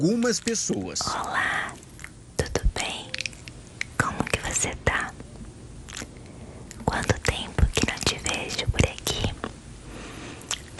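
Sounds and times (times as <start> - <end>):
speech: 0.0 - 1.8
crisp mouth clicks: 0.1 - 9.6, 10.4 - 10.7
ASMR whispering: 1.0 - 1.8, 2.4 - 3.3, 4.0 - 5.2, 6.8 - 9.4.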